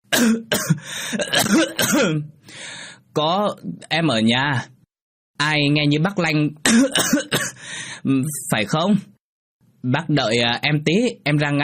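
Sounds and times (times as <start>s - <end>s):
person coughing and clearing their throat inside a shabby house: 0.1s - 2.4s, 6.6s - 7.6s
speech: 0.2s - 4.8s, 5.4s - 9.1s, 9.8s - 11.6s.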